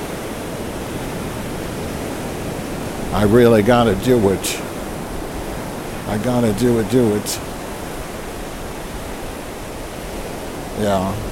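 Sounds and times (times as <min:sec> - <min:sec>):
ocean waves and surf roaring: 0:00.0 - 0:11.2
speech: 0:03.1 - 0:04.7, 0:06.1 - 0:07.5, 0:10.8 - 0:11.2.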